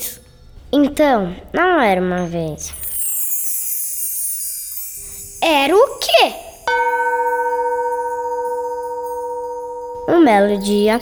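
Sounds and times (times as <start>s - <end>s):
speech: 0.8s - 2.8s, 5.4s - 6.5s, 10.2s - 11.0s
doorbell chime: 2.9s - 11.0s.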